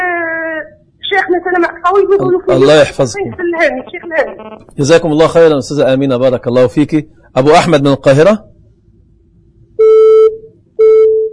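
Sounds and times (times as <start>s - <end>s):
faint hiss: 0.0s - 11.3s
speech: 1.1s - 8.5s
telephone tone marking a dropped call: 9.8s - 11.3s.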